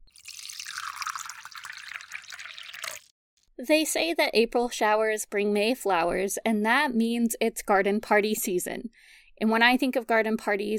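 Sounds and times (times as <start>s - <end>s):
tea pouring into a cup: 0.1s - 3.1s
speech: 3.6s - 10.7s.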